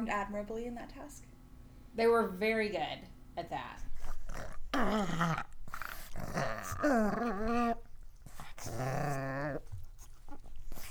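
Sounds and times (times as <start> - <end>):
speech: 0.0 - 1.4, 2.0 - 5.5, 6.2 - 7.8, 8.6 - 9.7
pugs grumbling and growling: 3.9 - 10.9.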